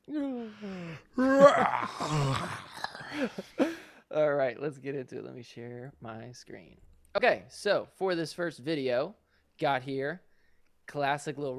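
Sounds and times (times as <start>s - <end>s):
person yawning: 0.0s - 3.9s
speech: 4.6s - 10.3s, 10.9s - 11.5s.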